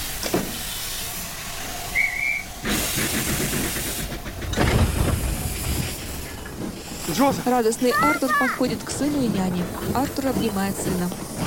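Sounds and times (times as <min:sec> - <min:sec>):
steam hissing from a train at a station: 0:00.0 - 0:11.4
high whistle-like tone: 0:01.9 - 0:02.5
speech: 0:07.2 - 0:11.4.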